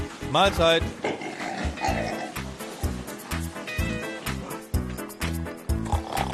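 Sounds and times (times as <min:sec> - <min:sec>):
speech: 0:00.3 - 0:01.1
pigs grunting while feeding on sorrel: 0:00.8 - 0:04.8, 0:05.7 - 0:06.3.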